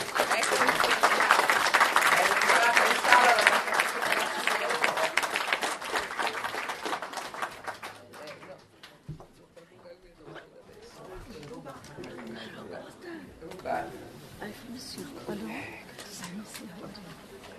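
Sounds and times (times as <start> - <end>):
audience applause: 0.0 - 9.0.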